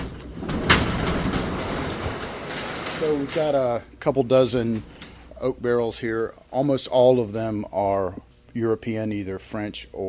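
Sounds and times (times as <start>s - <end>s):
small garage-style door pushed up in a wine warehouse: 0.0s - 6.2s
speech: 3.0s - 10.0s.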